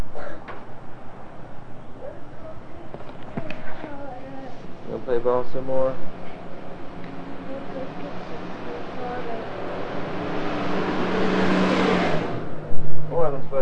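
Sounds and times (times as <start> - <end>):
voices beneath traffic noise: 1.9 - 10.1
buses roaring past: 4.8 - 13.6.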